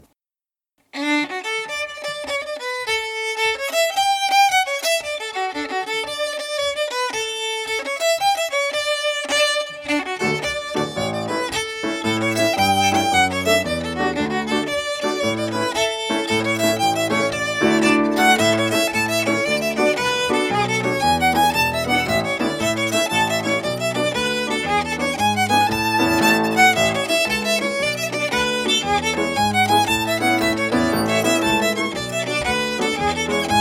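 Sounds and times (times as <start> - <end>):
fiddle playing a jig: 0.9 - 33.5.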